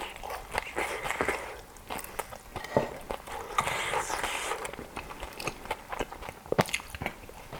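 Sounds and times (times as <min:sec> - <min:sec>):
crispy dumpling being bitten and chewed: 0:00.0 - 0:07.5.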